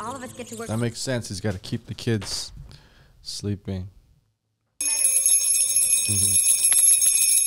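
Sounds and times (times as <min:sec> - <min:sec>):
speech: 0:00.2 - 0:02.6, 0:03.2 - 0:04.0, 0:06.1 - 0:06.5
small bell ringing with bright high tones: 0:04.8 - 0:07.4.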